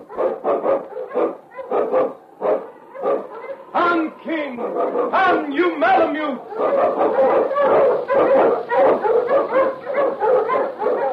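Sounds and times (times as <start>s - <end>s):
Malamute sled dog barking and yelping: 0.0s - 3.8s, 4.5s - 11.1s
speech: 4.8s - 9.8s.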